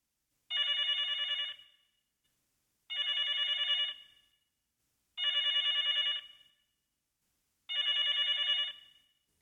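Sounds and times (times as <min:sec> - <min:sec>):
telephone bell ringing: 0:00.5 - 0:01.8, 0:02.9 - 0:04.2, 0:05.2 - 0:06.5, 0:07.7 - 0:09.0.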